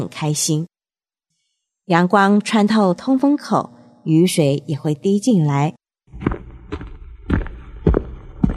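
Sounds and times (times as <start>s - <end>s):
speech: 0.1s - 0.7s, 1.9s - 5.8s
footsteps at walking pace: 6.1s - 8.5s.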